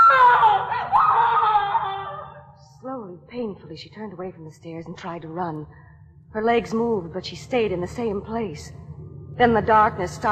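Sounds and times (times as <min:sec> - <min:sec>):
woman screaming in a high-pitched wail: 0:00.0 - 0:02.4
speech: 0:03.6 - 0:08.8, 0:09.4 - 0:10.3.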